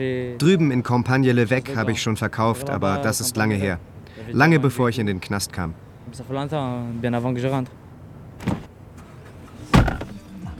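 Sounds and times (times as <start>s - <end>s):
speech: 0.0s - 7.8s
low engine rumble inside a moving car: 5.2s - 10.5s
sharp clunks inside a car: 8.4s - 10.2s.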